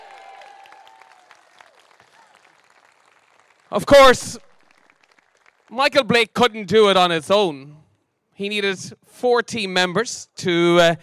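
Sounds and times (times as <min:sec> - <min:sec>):
audience applause: 0:00.0 - 0:03.9, 0:04.6 - 0:05.7
crowd cheering: 0:00.0 - 0:03.9
speech: 0:03.7 - 0:04.5, 0:05.7 - 0:07.8, 0:08.4 - 0:11.0.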